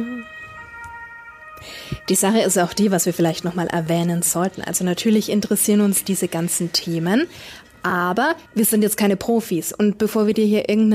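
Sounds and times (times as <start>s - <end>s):
ambulance siren: 0.0s - 10.9s
speech: 1.6s - 10.9s
low hum of ambient noise: 2.2s - 10.9s.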